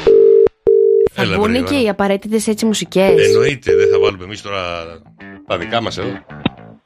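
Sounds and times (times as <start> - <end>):
telephone dial tone while redialing: 0.1 - 1.1
speech: 1.2 - 6.5.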